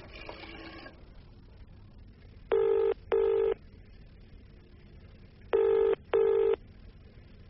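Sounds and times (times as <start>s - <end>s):
telephone double-burst rings: 2.5s - 3.6s, 5.5s - 6.6s.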